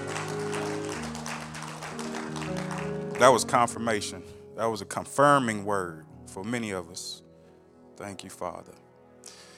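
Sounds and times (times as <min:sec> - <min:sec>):
congregation clapping hands: 0:00.0 - 0:03.8
speech: 0:03.2 - 0:07.2, 0:08.0 - 0:09.4.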